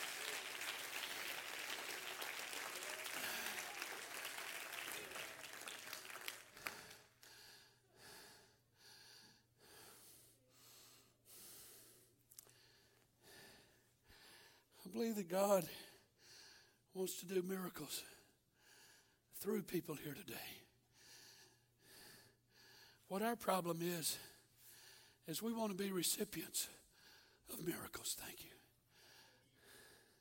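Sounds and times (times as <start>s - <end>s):
large audience clapping: 0.0s - 7.4s
speech: 14.9s - 15.8s, 17.0s - 18.2s, 19.4s - 20.7s, 23.1s - 24.3s, 25.3s - 26.8s, 27.5s - 28.6s.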